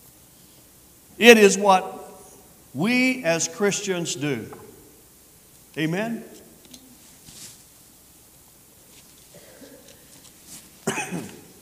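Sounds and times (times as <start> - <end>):
quiet hissy background: 0.0 - 11.5
speech: 1.2 - 2.0, 2.8 - 4.7, 5.8 - 6.4
loud harsh cough during a church sermon: 9.3 - 9.9, 10.8 - 11.5
faint throat sound during a church sermon: 9.3 - 10.1.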